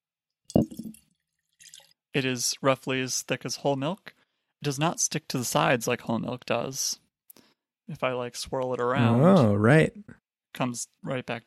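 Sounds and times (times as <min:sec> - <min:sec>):
liquid poured into a glass mason jar: 0:00.5 - 0:02.0
speech: 0:02.1 - 0:07.0, 0:07.9 - 0:11.4.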